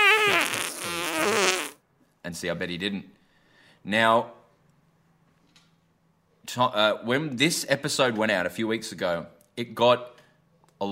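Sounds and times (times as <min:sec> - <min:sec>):
buzzy fart sound effect with wobbling pitch: 0:00.0 - 0:01.8
speech: 0:02.3 - 0:03.2, 0:03.8 - 0:04.4, 0:06.5 - 0:10.1.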